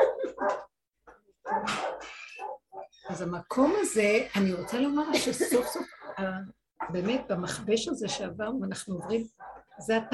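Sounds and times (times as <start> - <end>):
dog barking outside: 0.0 - 0.7, 1.4 - 3.2, 5.8 - 7.6, 8.9 - 10.1
speech: 3.1 - 10.1.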